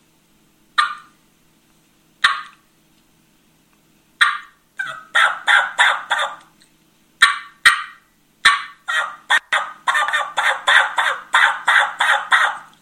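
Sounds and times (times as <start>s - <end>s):
turkey mouth call imitating gobbler clucks: 0.8s - 1.2s, 2.2s - 2.6s, 4.2s - 6.5s, 7.2s - 12.7s.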